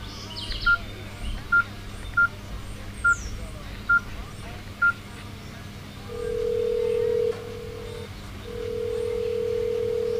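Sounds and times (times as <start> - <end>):
low hum: 0.0 - 10.1
phone ringing tone: 6.1 - 10.1.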